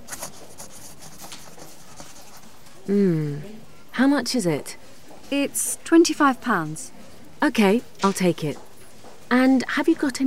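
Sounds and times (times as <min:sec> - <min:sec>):
pen scratching across paper: 0:00.0 - 0:02.5
speech: 0:02.9 - 0:08.7, 0:09.3 - 0:10.2.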